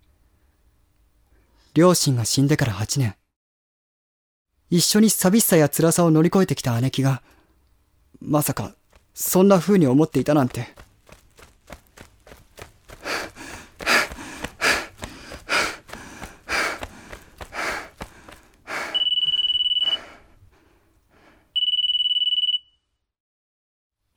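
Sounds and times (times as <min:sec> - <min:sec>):
speech: 0:01.8 - 0:03.2, 0:04.7 - 0:07.4, 0:08.2 - 0:10.8
heavy rapid panting breaths: 0:10.5 - 0:19.1
electronic ringtone from a mobile phone: 0:19.0 - 0:20.0, 0:21.6 - 0:22.8.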